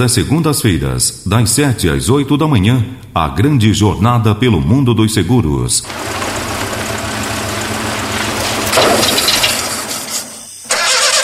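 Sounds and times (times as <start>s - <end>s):
speech: 0.0s - 6.6s
car engine cranking without starting: 5.8s - 11.2s.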